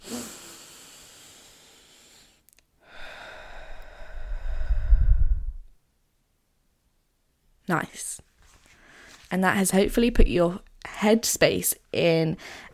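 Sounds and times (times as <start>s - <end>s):
deep breath taken slowly: 0.0s - 5.7s, 8.7s - 9.3s, 12.4s - 12.7s
speech: 7.7s - 8.3s, 9.3s - 12.7s.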